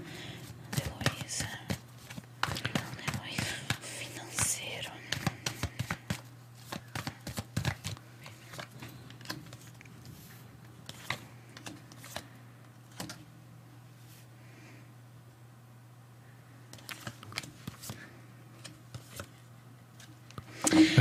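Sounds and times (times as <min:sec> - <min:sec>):
steady low hum: 0:00.0 - 0:20.9
deck of cards being shuffled: 0:00.4 - 0:04.5, 0:05.1 - 0:12.3, 0:16.8 - 0:18.0.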